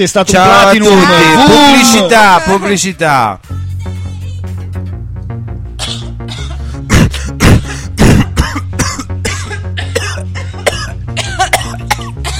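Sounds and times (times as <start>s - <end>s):
speech: 0.0s - 3.6s
harsh coughing: 5.8s - 12.3s
throat clearing: 5.8s - 12.3s.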